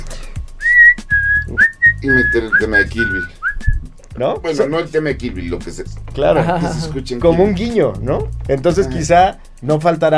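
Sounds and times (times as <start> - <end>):
person whistling a short tune for film redubbing: 0.5 - 3.9
speech: 2.0 - 10.1
laughter: 6.2 - 7.8.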